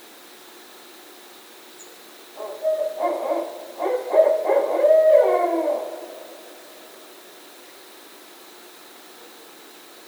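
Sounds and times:
barred owl calling a rapid series of low hoots: 2.4 - 7.1.

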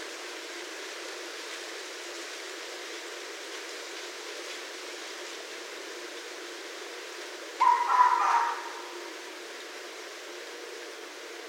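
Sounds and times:
faint steady hiss: 0.0 - 11.4
red fox barking: 7.6 - 9.2.

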